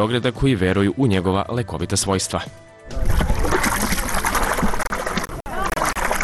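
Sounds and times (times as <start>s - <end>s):
speech: 0.0s - 3.2s
water trickling and splashing at a mud lake in Belgrade: 2.9s - 6.2s.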